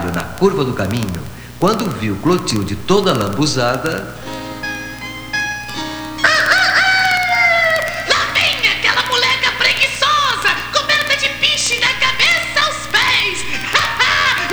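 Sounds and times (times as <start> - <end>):
laughter: 0.0 - 2.4, 3.0 - 14.5
speech: 0.4 - 4.4
rooster crowing: 4.2 - 11.0, 12.0 - 14.5.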